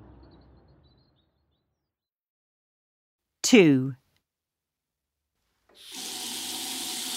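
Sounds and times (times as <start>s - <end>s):
speech: 3.5s - 4.0s
tap water gushing into a sink: 5.7s - 7.1s.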